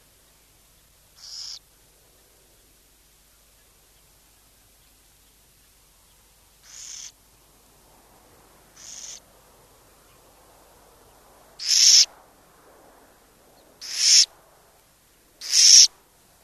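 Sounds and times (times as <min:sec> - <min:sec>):
burrowing owl uttering breathy rasps: 0:01.2 - 0:01.6, 0:06.6 - 0:07.1, 0:08.8 - 0:09.2, 0:11.6 - 0:12.1, 0:13.8 - 0:14.3, 0:15.4 - 0:15.9.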